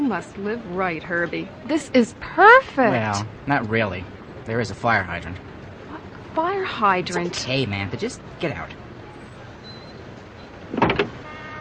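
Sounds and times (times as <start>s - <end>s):
speech: 0.1s - 5.5s, 6.4s - 8.8s
car door opening with latch clicks: 10.7s - 11.2s.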